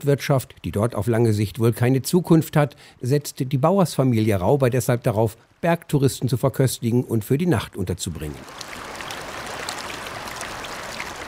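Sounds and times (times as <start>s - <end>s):
speech: 0.0s - 9.0s
glacial river rushing over a gravel bed in the upper Gastern valley: 8.4s - 11.2s.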